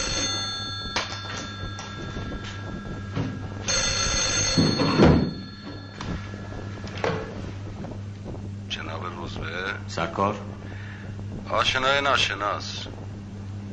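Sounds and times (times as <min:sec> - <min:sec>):
office telephone ringing unanswered: 0:00.0 - 0:07.5
steady low hum: 0:00.0 - 0:13.7
speech: 0:10.0 - 0:10.7, 0:11.5 - 0:13.0.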